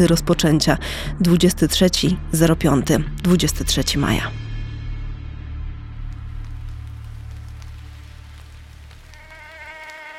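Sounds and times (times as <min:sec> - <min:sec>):
speech: 0:00.0 - 0:04.4
faint ticks: 0:06.1 - 0:10.1
Anopheles maculipennis mosquito buzzing: 0:09.1 - 0:10.1.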